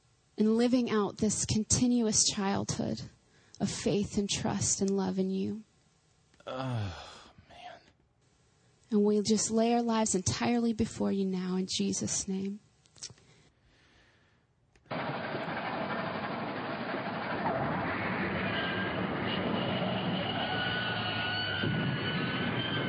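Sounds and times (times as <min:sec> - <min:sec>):
speech: 0:00.4 - 0:05.7, 0:06.4 - 0:07.2, 0:08.9 - 0:13.2
train wreck sound effect roar: 0:14.9 - 0:22.8.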